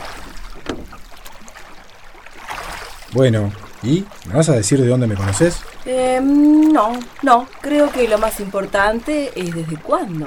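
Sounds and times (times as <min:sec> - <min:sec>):
oars of a small rowing boat splashing through river water: 0:00.0 - 0:10.2
wood knocking on a rowing boat: 0:00.2 - 0:01.4
speech: 0:03.1 - 0:10.2.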